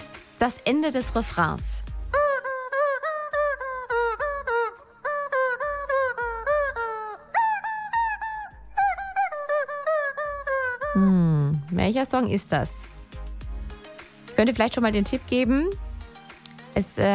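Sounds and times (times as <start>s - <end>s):
speech: 0.4s - 1.9s, 11.9s - 12.9s, 14.4s - 15.8s, 16.8s - 17.1s
squeaky rubber chicken toy playing a melody: 2.1s - 11.0s.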